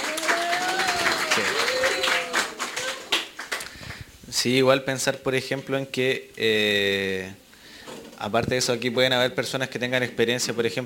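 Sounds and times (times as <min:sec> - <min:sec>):
voices calling out: 0:00.0 - 0:03.1
audience applause: 0:00.0 - 0:04.0
speech: 0:04.4 - 0:07.4, 0:08.2 - 0:10.8.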